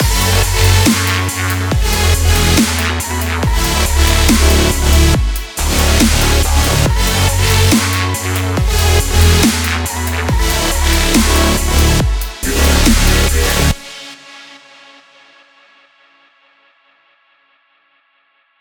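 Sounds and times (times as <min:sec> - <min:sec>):
future dubstep music: 0:00.0 - 0:14.2.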